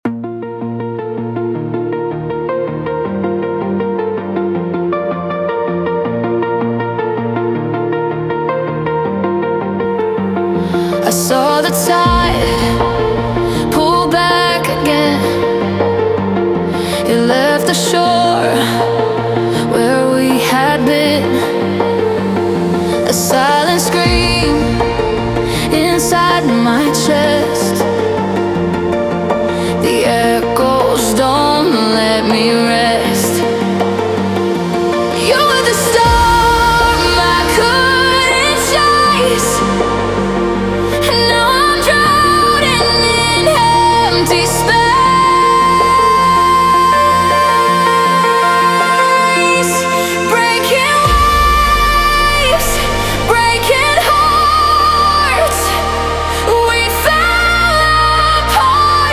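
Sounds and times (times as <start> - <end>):
future bass music: 0.0 - 59.1.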